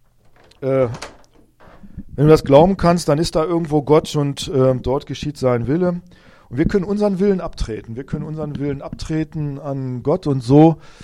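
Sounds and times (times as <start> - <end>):
door hinge creak: 0.0 - 2.1
door latch click: 0.2 - 1.8
speech: 0.6 - 1.1, 2.2 - 11.0.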